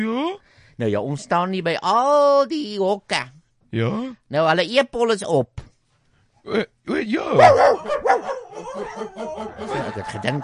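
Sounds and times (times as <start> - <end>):
speech: 0.0 - 5.7, 6.4 - 10.4
small dog barking: 7.4 - 9.2
laughter: 8.5 - 10.4.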